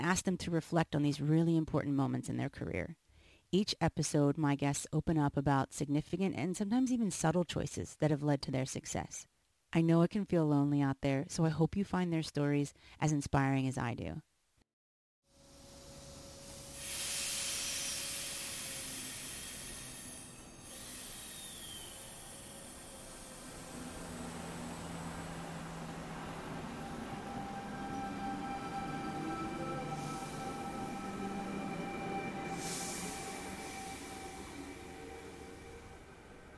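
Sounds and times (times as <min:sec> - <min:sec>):
speech: 0:00.0 - 0:14.3
broad hissing bursts: 0:16.5 - 0:26.9, 0:30.0 - 0:36.0
moving train rumbling heard from inside a carriage: 0:18.2 - 0:36.5
faint whining tones: 0:18.6 - 0:36.5.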